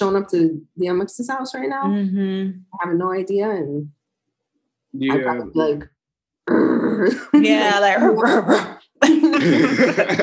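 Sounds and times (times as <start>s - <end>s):
speech: 0.0s - 4.0s, 4.9s - 5.9s, 6.5s - 10.2s
laughter: 5.0s - 5.5s, 9.0s - 10.2s
person imitating a dog with bark and growl: 6.5s - 7.3s.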